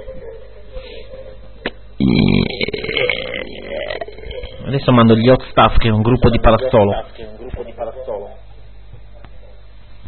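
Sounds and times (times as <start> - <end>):
loud burping during a digestion-themed gag: 2.0 - 4.9
speech: 4.7 - 7.4.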